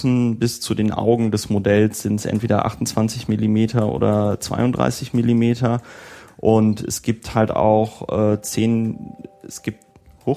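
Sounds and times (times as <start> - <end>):
speech: 0.0 - 10.3
faint steady electronic mobile phone notification tone: 8.4 - 9.8.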